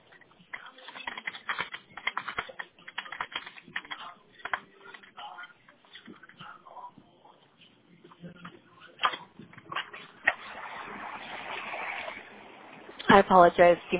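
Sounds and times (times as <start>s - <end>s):
typing on a computer keyboard: 0.2s - 5.2s
soft rushing noise: 10.1s - 13.9s
speech: 13.2s - 13.9s.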